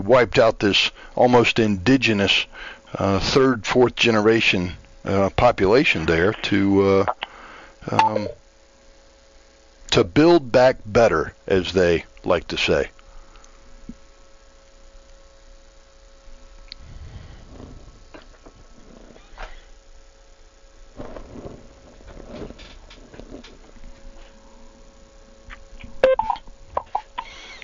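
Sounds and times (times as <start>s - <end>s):
speech: 0.0s - 8.4s, 9.9s - 13.0s
steady electronic phone-line tone: 7.9s - 8.4s, 26.0s - 26.4s
bright dialing beeps: 8.0s - 8.4s, 26.0s - 26.4s.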